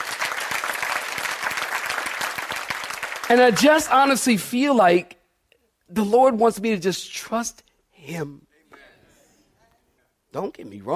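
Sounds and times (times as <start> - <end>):
church audience clapping vigorously: 0.0 - 4.3
speech: 3.3 - 5.2, 5.9 - 8.5, 10.3 - 10.9.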